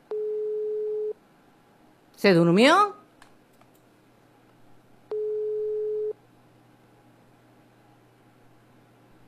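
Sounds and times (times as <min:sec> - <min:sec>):
telephone ringback tone while a call is placed: 0:00.1 - 0:01.2, 0:05.1 - 0:06.2
speech: 0:02.2 - 0:03.0.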